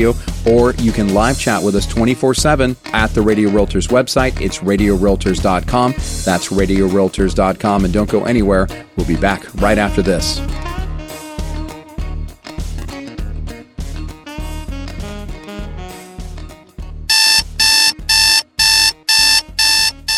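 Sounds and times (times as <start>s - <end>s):
speech: 0.0s - 10.7s
busy music: 0.0s - 20.1s
loud shrill alarm clock ringing: 17.1s - 20.1s.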